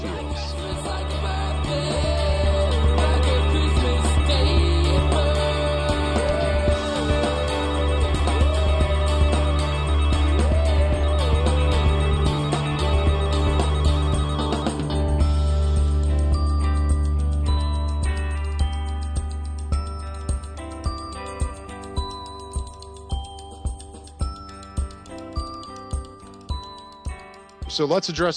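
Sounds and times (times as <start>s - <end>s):
telephone ringing within a music track: 0.0s - 15.5s
full steady music track: 0.0s - 28.3s
speech: 27.8s - 28.3s.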